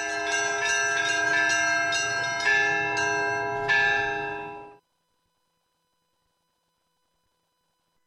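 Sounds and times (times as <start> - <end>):
several church bells ringing in a steady peal: 0.0 - 4.8.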